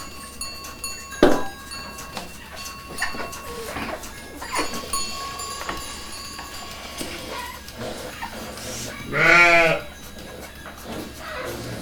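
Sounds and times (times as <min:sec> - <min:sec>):
sheep bleating in a fold during milking: 0:03.5 - 0:10.4.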